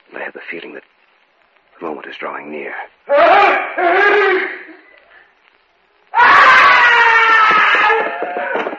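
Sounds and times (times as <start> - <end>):
speech: 0.2 - 1.0, 1.8 - 4.8
person screaming: 3.1 - 4.7, 6.1 - 8.6.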